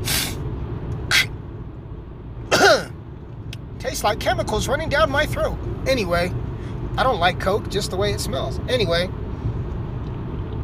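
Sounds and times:
faint steady hum: 0.0 - 10.6
person clearing nose: 1.1 - 1.3, 2.5 - 3.0
speech: 3.9 - 6.4, 7.0 - 9.2.

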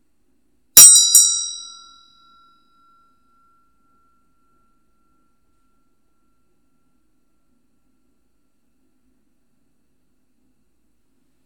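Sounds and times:
small meditation bell ringing: 0.8 - 7.6.

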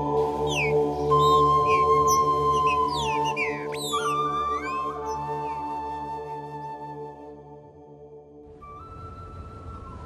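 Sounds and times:
chicúa bird whistling calls and chirps: 0.2 - 6.2.

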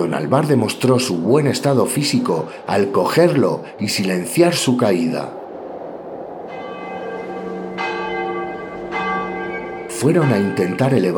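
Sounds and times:
speech: 0.0 - 5.4, 10.0 - 11.1
church bells ringing for vespers in a slow steady peal: 6.5 - 11.1.

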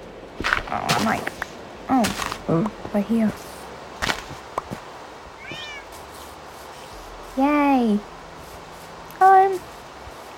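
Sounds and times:
knocks and rustles: 0.4 - 3.4, 4.0 - 4.9
speech: 0.7 - 3.5, 7.4 - 8.1
cat meowing: 5.4 - 5.9.

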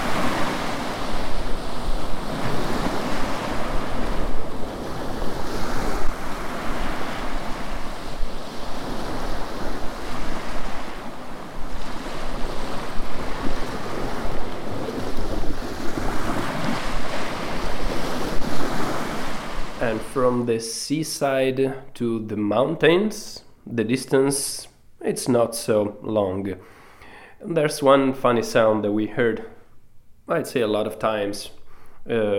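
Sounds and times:
gusts of wind: 0.0 - 19.8
sea waves breaking on the shore beside a seaside campsite in Turkey: 0.0 - 20.5
speech: 20.2 - 26.8, 27.4 - 29.6, 30.3 - 32.3.

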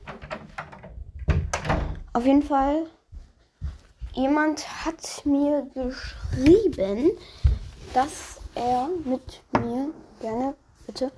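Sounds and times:
door pushed shut with a solid thump: 0.0 - 2.1
speech: 2.2 - 3.0, 4.2 - 11.1.

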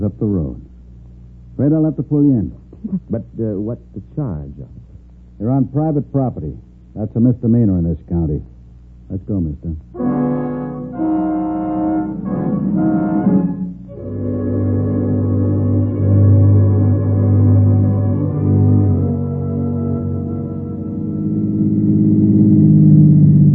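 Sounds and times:
speech: 0.0 - 0.7, 1.6 - 4.8, 5.4 - 8.5, 9.1 - 10.4
car engine drone while driven along a road: 9.9 - 23.5.

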